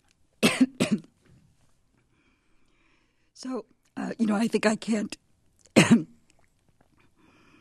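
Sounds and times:
person coughing: 0.4s - 1.1s, 5.8s - 6.1s
speech: 3.4s - 5.2s, 5.8s - 6.1s.

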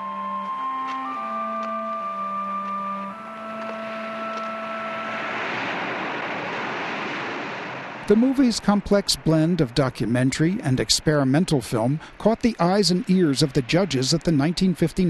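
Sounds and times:
steady droning tones from reversed sea and wind sounds: 0.0s - 15.0s
hissing surf-like wash from reversed sea sounds: 3.0s - 13.1s
speech: 8.1s - 15.0s.

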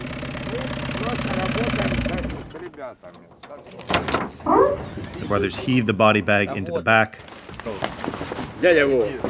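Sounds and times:
battered white van engine idling: 0.0s - 3.2s
speech: 2.8s - 9.2s.

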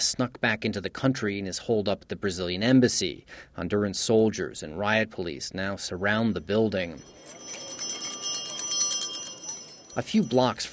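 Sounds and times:
speech: 0.0s - 7.4s, 10.0s - 10.7s
ice cream vendors ringing handbells on a street in Honduras: 6.4s - 10.7s.

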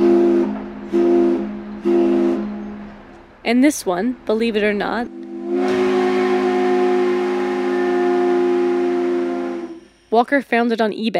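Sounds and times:
steamship whistle blasts: 0.0s - 2.8s, 5.1s - 10.1s
speech: 3.5s - 5.7s, 10.1s - 11.1s.

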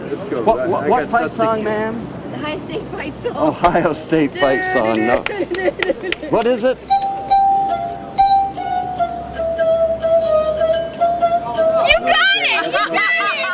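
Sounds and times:
people chattering: 0.0s - 13.5s
speech: 0.1s - 7.0s
people laughing: 3.6s - 6.6s, 11.9s - 13.5s
musical glasses played by rubbing fingers on glass rims: 6.8s - 12.4s.

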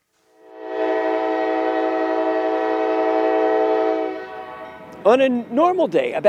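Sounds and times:
freight train horn blast at a rail junction: 0.3s - 5.0s
low rumble of freight train passing through rail junction: 0.3s - 6.2s
speech: 5.0s - 6.2s.

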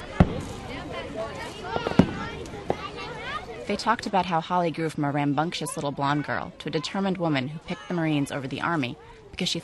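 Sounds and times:
Independence Day fireworks popping and booming outdoors at a beach: 0.0s - 0.8s, 1.8s - 2.8s
low murmur of voices of gathered relatives: 0.0s - 9.6s
speech: 3.7s - 9.6s.

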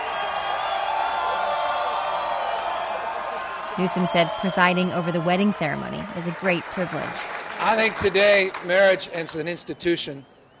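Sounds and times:
large crowd cheering and whooping: 0.0s - 9.7s
speech: 3.8s - 10.3s.

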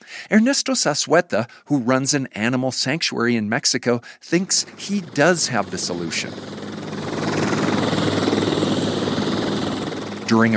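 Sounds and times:
speech: 0.3s - 6.8s, 10.3s - 10.5s
helicopter flying over the Magdalena River in Colombia: 4.4s - 10.5s.

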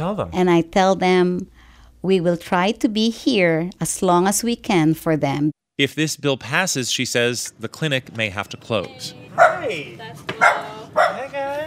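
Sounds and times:
speech: 0.0s - 11.6s
dogs whimpering with higher whiny tones: 9.4s - 9.8s, 10.4s - 11.3s
couple of dogs barking in a modest condo: 9.4s - 11.5s.

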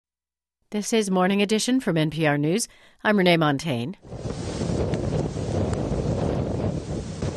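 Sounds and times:
speech: 0.7s - 4.9s
Category 4 hurricane winds hitting Bull Bay on Jamaica's southern coast: 4.0s - 7.3s.

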